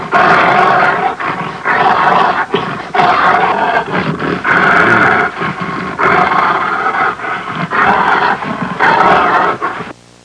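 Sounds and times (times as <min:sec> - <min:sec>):
angry growling: 0:00.0 - 0:09.9.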